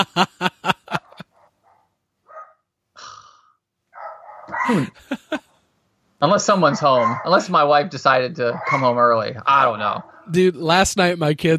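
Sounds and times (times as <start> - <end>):
speech: 0.0 - 0.5, 4.7 - 5.2, 6.2 - 11.5
laughter: 0.0 - 1.2, 4.6 - 5.4
dog barking: 1.4 - 2.6, 3.9 - 5.0, 6.7 - 7.5, 8.5 - 9.0.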